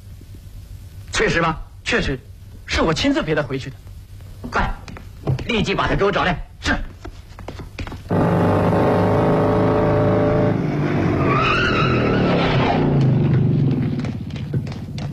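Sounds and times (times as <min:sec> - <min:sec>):
speech: 0:01.2 - 0:03.8, 0:04.4 - 0:04.8, 0:05.5 - 0:06.9
motorcycle tires screeching as it brakes to a stop: 0:08.1 - 0:14.9
motorcycle engine roaring as it speeds up: 0:08.1 - 0:15.1.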